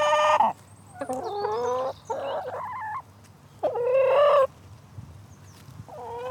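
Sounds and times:
chickens clucking and squawking on a farm waiting to be fed: 0.0s - 4.6s, 5.9s - 6.2s.

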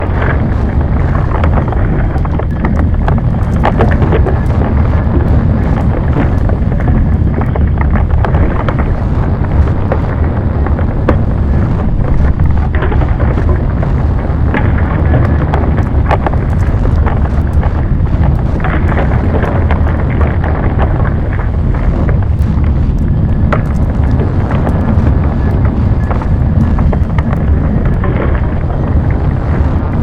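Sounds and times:
earthquake rumble: 0.0s - 30.0s.

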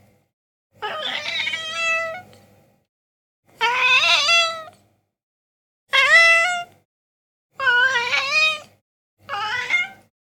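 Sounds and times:
domestic cat meowing while begging for food: 0.8s - 2.3s, 3.6s - 4.7s, 5.9s - 6.7s, 7.6s - 8.7s, 9.3s - 10.1s.

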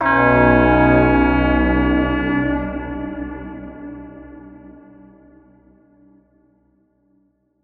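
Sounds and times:
alien horn: 0.0s - 5.6s.

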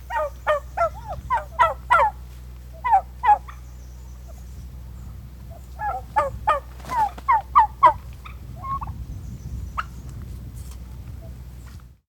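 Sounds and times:
several turkeys gobbling: 0.0s - 4.4s, 5.5s - 8.9s
low steady hum: 0.0s - 12.0s.

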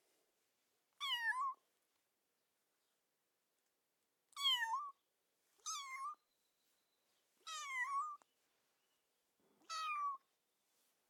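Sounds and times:
kitten meowing: 1.0s - 1.6s, 5.6s - 6.2s, 7.5s - 8.2s, 9.7s - 10.2s.

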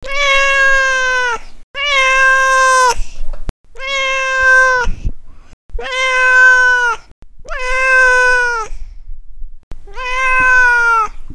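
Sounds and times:
cat meowing for food: 0.0s - 3.0s, 3.7s - 5.1s, 5.8s - 8.8s, 9.8s - 11.2s.

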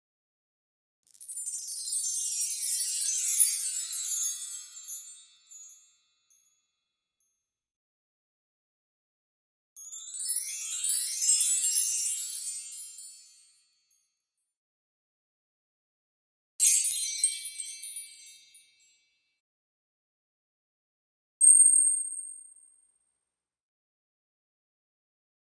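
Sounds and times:
wind chimes: 1.1s - 6.5s, 9.8s - 14.0s, 16.6s - 19.0s.

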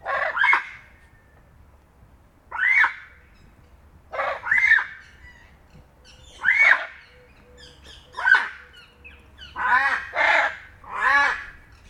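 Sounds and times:
hyacinth macaw giving grating honking squawks: 0.0s - 0.9s, 4.1s - 11.8s.

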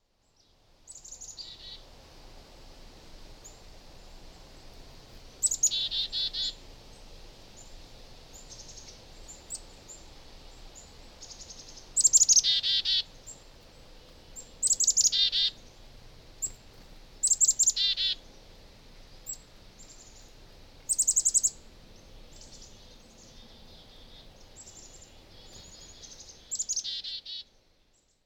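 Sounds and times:
soft background hiss: 0.0s - 28.2s
Black-capped chickadee giving buzzy rasping calls: 0.9s - 1.8s, 5.4s - 6.6s, 11.2s - 13.4s, 14.4s - 15.8s, 17.2s - 18.3s, 20.9s - 21.6s, 22.3s - 27.5s.

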